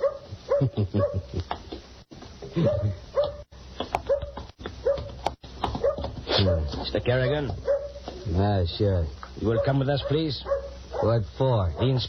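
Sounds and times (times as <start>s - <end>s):
dog barking: 0.0s - 1.3s, 2.6s - 5.2s, 5.8s - 6.8s, 7.6s - 8.0s, 9.4s - 12.0s
speech: 0.6s - 1.6s, 2.6s - 3.0s, 6.4s - 7.7s, 8.3s - 12.0s.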